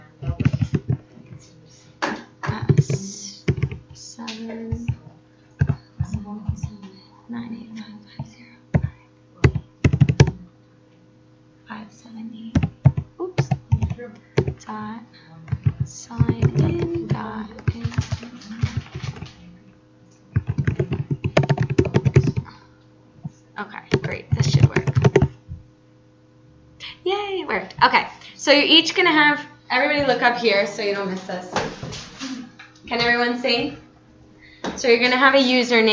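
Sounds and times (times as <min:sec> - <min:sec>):
faint low hum: 0:00.0 - 0:35.9
fingers typing on a computer keyboard: 0:00.3 - 0:01.0, 0:02.5 - 0:03.8, 0:08.8 - 0:10.4, 0:12.6 - 0:14.6, 0:15.5 - 0:19.3, 0:20.4 - 0:22.5, 0:23.9 - 0:25.3
speech: 0:28.5 - 0:31.8, 0:32.9 - 0:33.8, 0:34.8 - 0:35.9.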